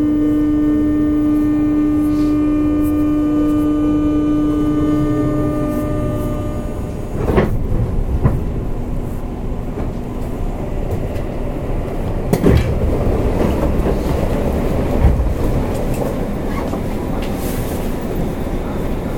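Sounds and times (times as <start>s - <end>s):
electric commuter train motor whine: 0.0s - 7.2s
dense rolling rumble of a commuter train: 0.0s - 19.1s
rail joints clacking under a commuter train: 4.7s - 19.1s.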